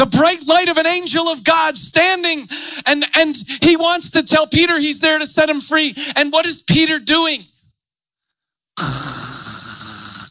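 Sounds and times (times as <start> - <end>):
speech: 0.0 - 7.5, 8.8 - 9.2
person imitating a raspy snore: 8.8 - 10.2.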